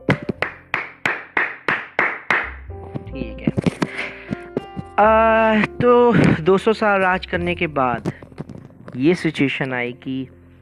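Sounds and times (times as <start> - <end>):
slow single claps in a reverberant hall: 0.1 - 2.6
speech: 5.0 - 8.2, 9.0 - 10.4.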